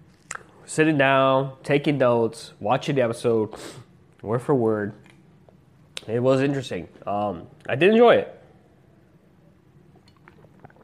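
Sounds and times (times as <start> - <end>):
low hum: 0.0 - 10.8
speech: 0.7 - 5.0, 6.0 - 8.4
soft swallowing: 9.8 - 10.8
person sipping water from a glass: 9.9 - 10.8.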